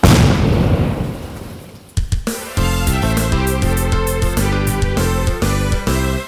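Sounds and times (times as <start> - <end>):
deep explosion inside an old well: 0.0 - 1.6
upbeat rhythmic music jingle: 2.3 - 6.2.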